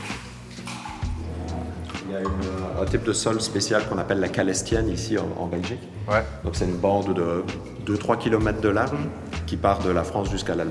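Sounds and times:
water dripping and trickling in a small cave cavity in Wallonia Belgium: 0:00.0 - 0:02.7
speech: 0:02.1 - 0:10.6.

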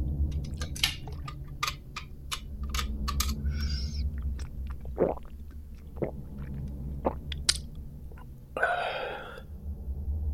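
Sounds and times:
steady low hum in the ringing chamber of a church tower: 0:00.0 - 0:10.3
metal hip flask cap unscrewing: 0:00.4 - 0:07.7
sharp clicky mouth noises: 0:03.5 - 0:08.3
man gulping and swallowing a swig from a metal hip flask: 0:03.6 - 0:09.4
breathy exhale: 0:08.6 - 0:09.6.

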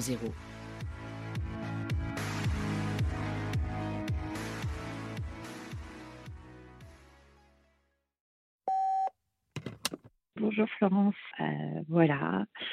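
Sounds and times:
speech: 0:00.0 - 0:00.6, 0:10.6 - 0:12.7
music: 0:00.0 - 0:08.1
electronic answering machine beep: 0:08.7 - 0:09.1.

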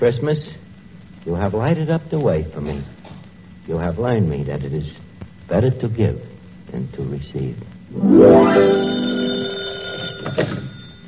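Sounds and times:
speech: 0:00.0 - 0:03.0, 0:03.7 - 0:09.3, 0:10.2 - 0:10.7
old-fashioned telephone bell ringing: 0:08.1 - 0:11.0.

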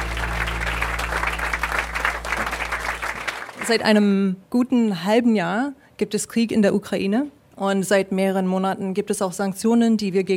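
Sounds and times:
live audience aboard a ship on the Spree applauding: 0:00.0 - 0:03.8
speech: 0:03.7 - 0:10.3.

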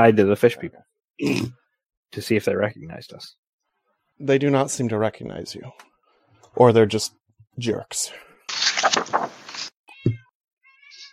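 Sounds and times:
speech: 0:00.0 - 0:03.4, 0:04.2 - 0:05.9, 0:06.6 - 0:08.6
distressed cat yowling and meowing loudly: 0:09.9 - 0:11.1.

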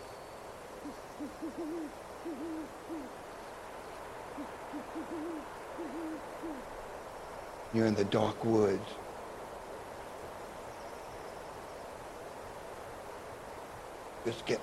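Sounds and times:
soft hiss: 0:00.0 - 0:14.6
owl hooting: 0:00.8 - 0:03.2, 0:04.3 - 0:06.7
speech: 0:00.9 - 0:03.2, 0:04.4 - 0:06.8, 0:07.7 - 0:09.0, 0:14.2 - 0:14.6.

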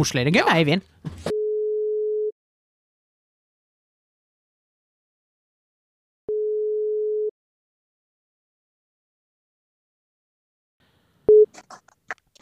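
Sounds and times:
person speaking as the call is answered: 0:00.0 - 0:01.3
telephone ringing tone while calling someone: 0:01.3 - 0:02.3, 0:06.3 - 0:07.3.

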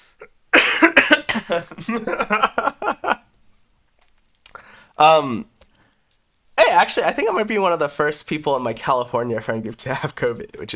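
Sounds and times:
person coughing loudly: 0:00.2 - 0:02.2
laughter: 0:01.4 - 0:03.2
speech: 0:01.5 - 0:02.7, 0:05.0 - 0:05.5, 0:06.8 - 0:10.7.

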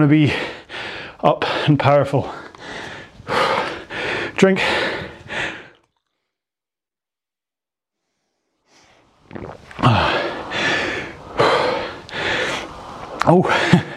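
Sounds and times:
speech: 0:00.0 - 0:00.6, 0:01.2 - 0:02.4, 0:04.4 - 0:04.8, 0:09.3 - 0:10.2, 0:13.3 - 0:13.9
heavy breathing of someone recovering after rowing exercise: 0:00.0 - 0:05.9, 0:09.7 - 0:13.9.

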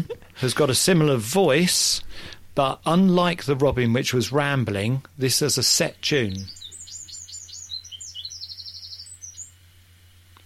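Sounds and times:
laughter: 0:00.0 - 0:00.5
speech: 0:00.0 - 0:06.6
low steady hum: 0:00.0 - 0:10.4
wren singing: 0:05.3 - 0:09.6.

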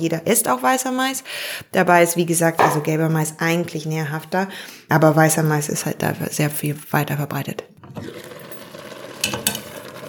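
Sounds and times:
speech: 0:00.0 - 0:08.3
food sizzling in a frying pan in a kitchen: 0:08.4 - 0:10.0.

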